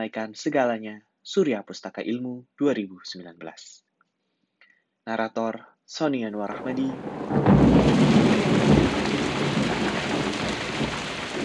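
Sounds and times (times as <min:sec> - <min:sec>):
speech: 0:00.0 - 0:03.8, 0:05.0 - 0:08.2
low thunder rumble: 0:06.4 - 0:11.4
heavy early-June rain pouring down: 0:06.5 - 0:11.4.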